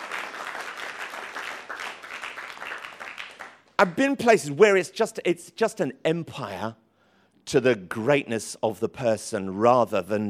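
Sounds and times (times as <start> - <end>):
audience applauding: 0.0 - 3.7
speech: 3.8 - 6.8, 7.5 - 10.2.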